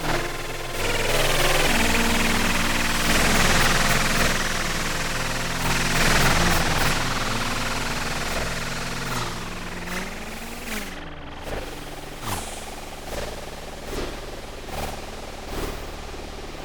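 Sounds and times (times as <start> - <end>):
dissonant noise: 0.0 - 16.6.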